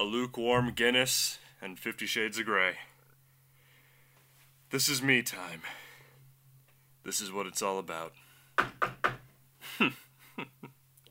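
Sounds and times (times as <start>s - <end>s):
speech: 0.0s - 2.9s, 4.7s - 5.8s, 7.0s - 9.1s, 9.8s - 10.5s
knocking at a door: 8.6s - 9.2s.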